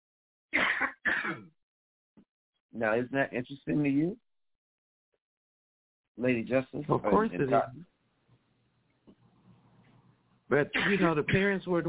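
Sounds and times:
person clearing throat: 0:00.6 - 0:01.5, 0:10.7 - 0:11.2
speech: 0:02.8 - 0:04.3, 0:06.2 - 0:07.9, 0:10.5 - 0:11.8.

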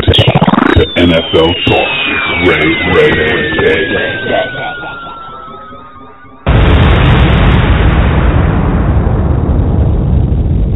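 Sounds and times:
falling whistle tone sound effect: 0:00.3 - 0:06.5
speech: 0:01.0 - 0:04.6
explosion sound effect with sustained rumble: 0:06.4 - 0:10.7.

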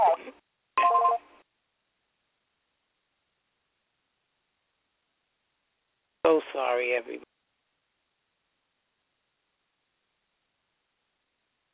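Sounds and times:
telephone ringing over a phone line: 0:00.8 - 0:01.3
speech: 0:06.3 - 0:07.3.

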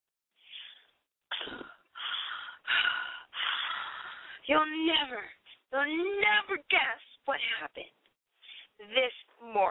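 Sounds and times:
person gasping breathlessly: 0:00.4 - 0:04.4
speech: 0:04.5 - 0:08.0, 0:08.8 - 0:09.7.

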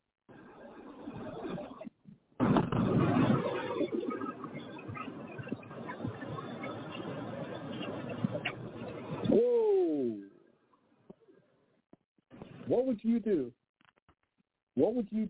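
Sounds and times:
flock of birds flying past a car: 0:02.4 - 0:09.3
speech: 0:12.8 - 0:13.6, 0:14.8 - 0:15.2.

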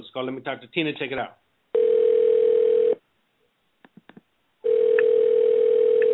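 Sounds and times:
speech: 0:00.0 - 0:01.5
steady filtered telephone ring tone over the line: 0:01.8 - 0:03.0, 0:04.6 - 0:06.1.

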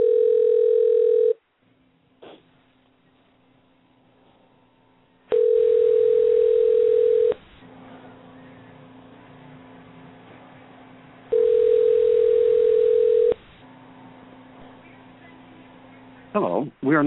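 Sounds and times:
telephone tone while placing a call: 0:00.0 - 0:01.4, 0:05.3 - 0:07.4, 0:11.3 - 0:13.4
low hum on a telephone line: 0:00.0 - 0:16.8
speech: 0:16.9 - 0:17.0.

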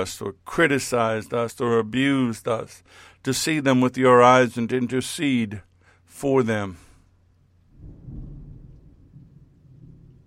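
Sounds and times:
speech: 0:00.0 - 0:06.8
faint hiss of rain: 0:00.0 - 0:10.2
low rolling thunder during a storm: 0:07.7 - 0:10.2.

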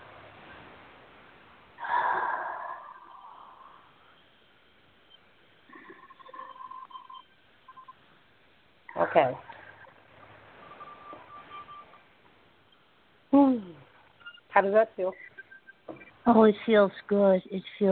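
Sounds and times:
deep breath during guided breathing: 0:01.8 - 0:04.2
speech: 0:09.1 - 0:09.5, 0:14.6 - 0:15.3, 0:16.3 - 0:17.8.

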